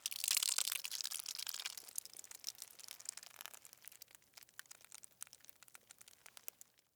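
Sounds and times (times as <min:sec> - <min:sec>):
blood squirting and spilling: 0:00.0 - 0:04.1.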